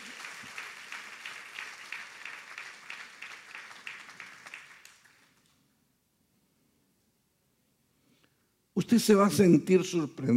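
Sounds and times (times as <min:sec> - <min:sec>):
church congregation applauding: 0:00.0 - 0:05.6
speech: 0:08.8 - 0:10.3.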